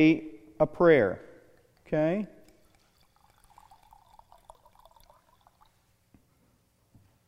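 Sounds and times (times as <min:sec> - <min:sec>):
speech: 0:00.0 - 0:01.3, 0:01.9 - 0:02.4
soft clinks: 0:01.5 - 0:05.9
wine being poured into a glass: 0:01.5 - 0:06.0.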